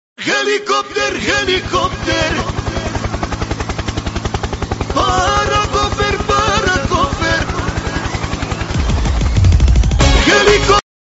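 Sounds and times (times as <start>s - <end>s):
helicopter: 0.9s - 10.8s.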